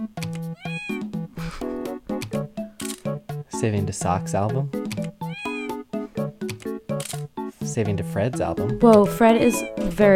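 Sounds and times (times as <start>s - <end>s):
cats meowing: 0.6s - 1.1s, 5.2s - 5.8s, 9.3s - 9.9s
speech: 3.6s - 5.0s, 7.8s - 10.1s.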